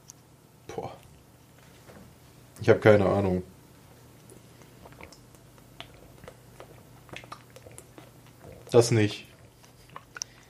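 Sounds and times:
low steady hum: 0:00.0 - 0:10.4
speech: 0:02.6 - 0:03.5, 0:08.7 - 0:09.3
person drinking still water and swallowing: 0:04.3 - 0:10.4.

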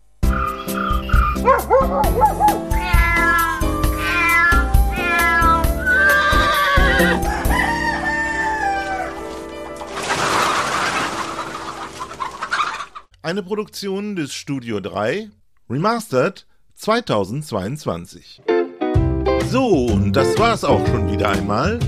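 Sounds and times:
other animal calls: 0:00.2 - 0:13.1
cats meowing loudly: 0:00.3 - 0:09.4
speech: 0:13.3 - 0:18.6, 0:19.4 - 0:21.8.

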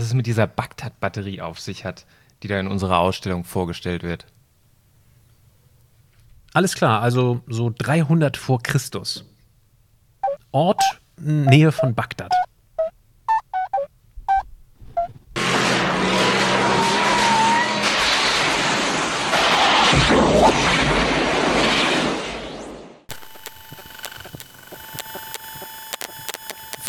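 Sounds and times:
speech: 0:00.0 - 0:04.4, 0:06.5 - 0:09.3, 0:10.5 - 0:12.4
buzzing electronic tones: 0:10.2 - 0:14.4, 0:23.1 - 0:26.8
quick string of beeps: 0:10.2 - 0:14.4, 0:23.1 - 0:26.8
brief car tire squeal: 0:15.4 - 0:20.0
car skidding out of control: 0:15.4 - 0:22.1.

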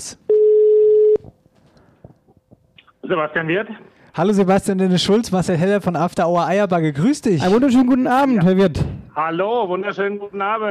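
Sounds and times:
telephone ringback tone: 0:00.3 - 0:01.2
speech: 0:03.1 - 0:10.6.

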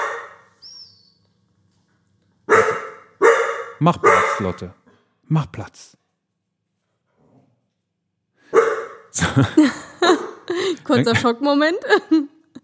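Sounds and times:
dog barking sharply: 0:00.0 - 0:00.5, 0:02.5 - 0:04.7, 0:08.5 - 0:09.1
speech: 0:03.8 - 0:06.0, 0:09.2 - 0:12.3
laughter: 0:09.2 - 0:11.4.

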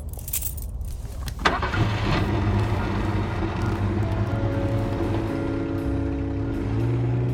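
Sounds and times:
keys jingling: 0:00.0 - 0:01.4
new car engine starting and accelerating: 0:01.4 - 0:07.3.

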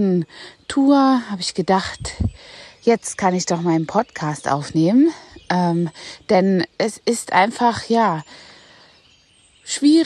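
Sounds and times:
speech: 0:00.0 - 0:08.5, 0:09.7 - 0:10.0
faint birdsong in a forest: 0:00.0 - 0:10.0.

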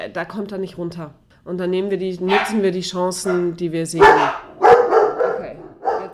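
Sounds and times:
speech: 0:00.0 - 0:04.4
several dogs barking in quick bursts: 0:02.2 - 0:06.1
sharp dog yip: 0:02.3 - 0:02.6, 0:03.2 - 0:06.1.

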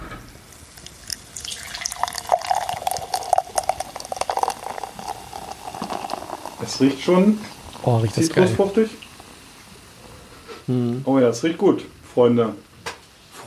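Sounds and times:
fizzy bubbling of beer: 0:00.4 - 0:10.6
beer poured from a can into a glass: 0:00.5 - 0:10.0
speech: 0:06.7 - 0:09.0, 0:10.7 - 0:12.7.

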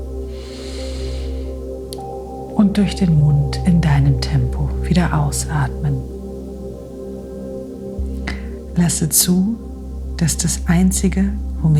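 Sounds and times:
steady sustained music: 0:00.0 - 0:11.7
deep slow inhale through the nose during a guided breathing exercise: 0:00.3 - 0:01.7
speech: 0:02.6 - 0:06.2, 0:08.8 - 0:09.6, 0:10.2 - 0:11.7.

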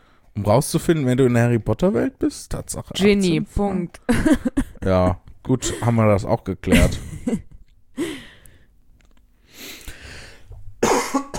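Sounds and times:
speech: 0:00.4 - 0:08.1
person coughing harshly: 0:05.6 - 0:06.0, 0:10.8 - 0:11.3.

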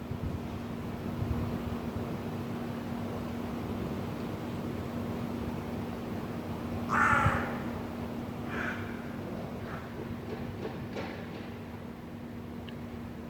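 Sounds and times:
steady hum of city noise: 0:00.0 - 0:13.2
crows cawing in an echoing inner courtyard of an old apartment building in Vienna: 0:06.8 - 0:09.9.

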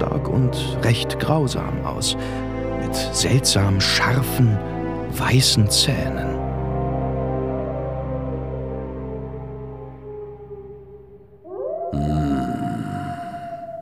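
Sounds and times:
speech: 0:00.4 - 0:06.3
wolves howling: 0:06.4 - 0:13.7.

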